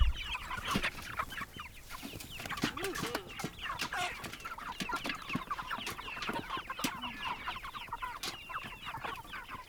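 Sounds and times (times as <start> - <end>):
flock of chickens clucking and squawking on a goat farm: 0.0 - 9.6
clicks and bumps: 2.0 - 8.5.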